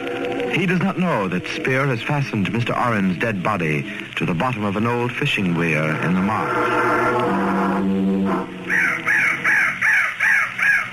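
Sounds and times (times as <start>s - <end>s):
low droning hum: 0.0s - 10.3s
speech: 0.2s - 8.0s
crow cawing: 8.7s - 10.9s.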